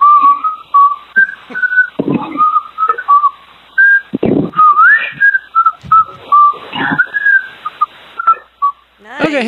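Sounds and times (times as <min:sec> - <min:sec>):
person whistling a birthday tune: 0:00.0 - 0:08.8
dull thumps: 0:01.6 - 0:03.0, 0:04.1 - 0:07.4.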